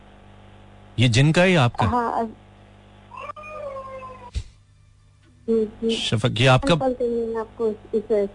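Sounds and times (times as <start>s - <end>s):
steady line hum: 0.0s - 3.2s, 4.2s - 8.3s
speech: 1.0s - 2.4s, 5.5s - 8.3s
small child giving a wavering high-pitched cry: 3.2s - 4.3s.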